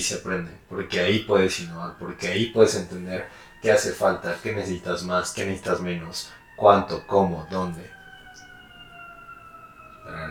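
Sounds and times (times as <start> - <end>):
speech: 0.0 - 8.0, 10.1 - 10.2
ambulance siren: 0.0 - 10.2
traffic rumble and hiss: 0.0 - 10.2.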